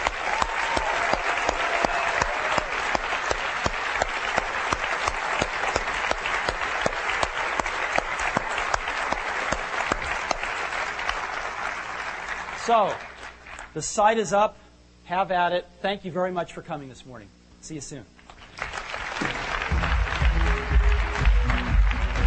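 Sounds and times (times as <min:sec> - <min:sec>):
audience applause: 0:00.0 - 0:13.7, 0:18.3 - 0:22.2
speech: 0:12.7 - 0:13.0, 0:13.8 - 0:18.2.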